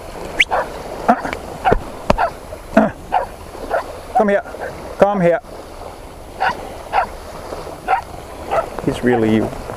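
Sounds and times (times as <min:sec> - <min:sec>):
outdoor noise: 0:00.0 - 0:09.7
dog barking at a cow: 0:00.4 - 0:02.4, 0:03.1 - 0:03.9, 0:04.5 - 0:04.8, 0:06.4 - 0:07.1, 0:07.9 - 0:09.3
speech: 0:04.2 - 0:05.6, 0:08.8 - 0:09.7.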